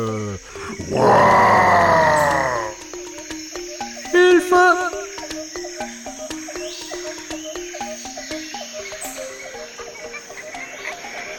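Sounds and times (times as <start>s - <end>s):
speech: 0.0s - 1.3s
lion growling and roaring: 0.7s - 2.8s.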